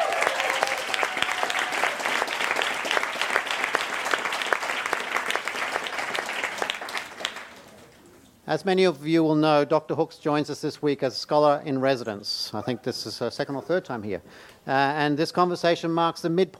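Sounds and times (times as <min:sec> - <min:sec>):
audience clapping: 0:00.0 - 0:08.0
speech: 0:08.5 - 0:16.5.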